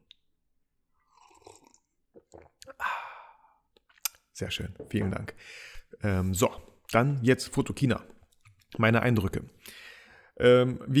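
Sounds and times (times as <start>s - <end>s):
person slurping a sip of coffee: 1.1s - 2.8s
speech: 4.4s - 8.1s, 8.7s - 10.9s.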